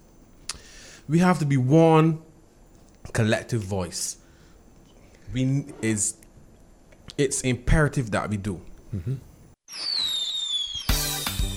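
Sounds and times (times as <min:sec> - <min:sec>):
speech: 0:01.1 - 0:02.2, 0:03.1 - 0:04.2, 0:05.3 - 0:06.2, 0:07.2 - 0:10.0
firework whistling with falling pitch: 0:09.7 - 0:11.5.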